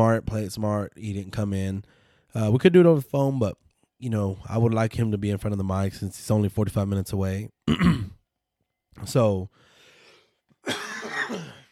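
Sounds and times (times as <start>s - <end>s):
speech: 0.0s - 8.2s, 9.0s - 9.7s, 10.6s - 11.5s
person still recovering from illness coughing: 7.6s - 8.2s, 10.6s - 11.7s.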